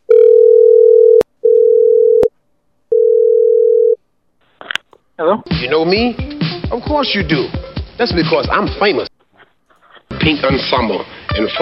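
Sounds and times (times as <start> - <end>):
low telephone dial tone while placing a call: 0.1 - 2.3, 2.9 - 4.0
speech: 5.2 - 9.1, 10.2 - 11.6.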